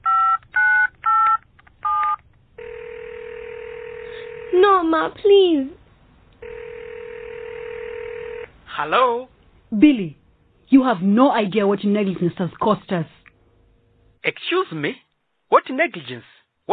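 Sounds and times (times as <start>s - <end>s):
keypad beeps of a phone number being dialed: 0.1s - 2.2s
speech: 4.6s - 5.8s, 8.8s - 13.2s, 14.2s - 16.7s.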